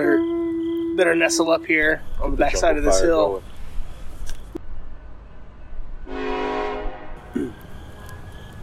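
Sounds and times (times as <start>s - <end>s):
train horn: 0.0s - 3.6s, 6.0s - 7.4s
low rumbling rail noise: 0.0s - 8.6s
speech: 1.0s - 3.5s.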